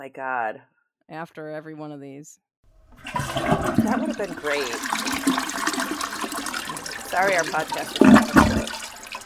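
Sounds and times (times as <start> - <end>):
speech: 0.0 - 6.2, 7.1 - 8.6
toilet flushing with swirling water: 2.9 - 9.2.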